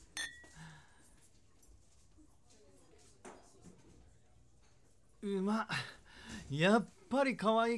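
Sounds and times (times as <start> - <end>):
two glasses of alcohol clinking in a toast: 0.0 - 0.6
speech: 5.2 - 7.7.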